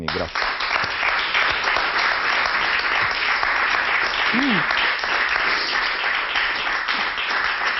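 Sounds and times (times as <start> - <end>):
speech: 0.0 - 0.6, 4.3 - 4.8
crowd applauding: 0.0 - 7.7
vocal whoop or cheer: 4.3 - 4.7.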